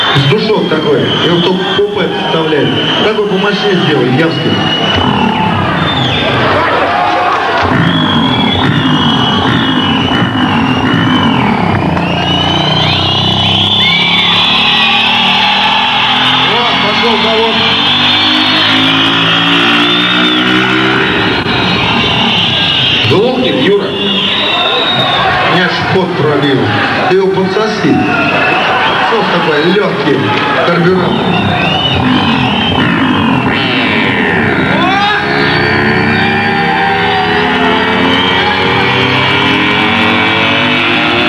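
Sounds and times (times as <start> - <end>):
constant loud din: 0.0 - 41.2
noisy crowd with people talking: 0.0 - 41.2
speech: 0.2 - 5.5
small motorcycle engine revving: 7.6 - 22.7, 31.5 - 41.2.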